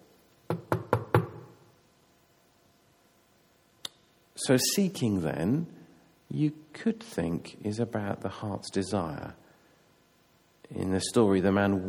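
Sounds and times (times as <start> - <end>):
firm knocking on a door: 0.5 - 1.6
speech: 4.4 - 9.4, 10.7 - 11.8.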